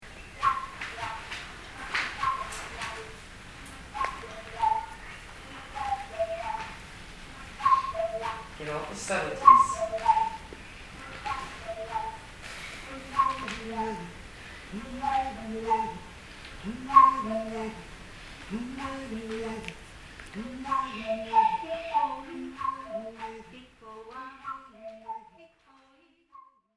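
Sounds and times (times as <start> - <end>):
whistle tubes: 0.2 - 1.4, 2.1 - 3.2, 3.8 - 6.8, 7.6 - 14.2, 14.8 - 17.9, 20.4 - 23.6, 24.2 - 25.5.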